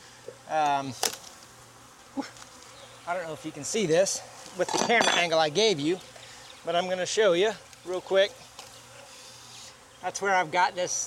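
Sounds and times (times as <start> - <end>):
honeybees buzzing at a strong hive: 0.0 - 11.0
speech: 0.5 - 1.2, 2.2 - 2.4, 3.1 - 8.4, 10.0 - 11.0.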